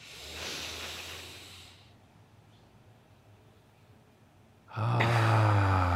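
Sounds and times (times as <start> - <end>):
deep breath during a guided relaxation: 0.0 - 2.0, 4.7 - 5.9.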